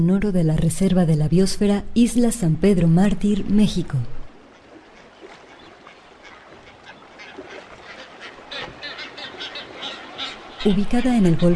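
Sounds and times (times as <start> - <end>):
speech: 0.0 - 4.2, 10.6 - 11.5
brown-footed and blue-footed boobies colony calling on Isla San Pedro Mártir: 4.5 - 11.5.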